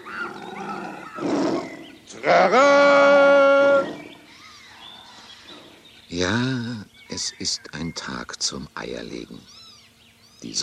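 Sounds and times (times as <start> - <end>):
lion roaring: 0.0 - 4.2
speech: 2.1 - 3.2, 6.1 - 6.6, 7.2 - 9.6, 10.4 - 10.6.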